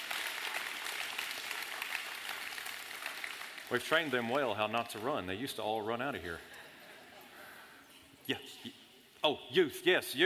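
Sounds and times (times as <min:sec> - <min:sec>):
crowd clapping for children and teachers: 0:00.0 - 0:04.4
speech: 0:03.7 - 0:06.5, 0:08.3 - 0:10.2.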